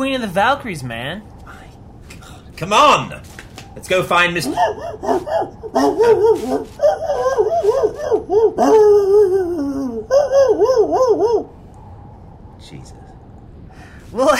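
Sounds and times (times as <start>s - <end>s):
speech: 0.1s - 1.3s, 2.6s - 11.6s, 12.6s - 13.0s, 14.1s - 14.3s
small dog barking and yipping: 4.4s - 9.0s.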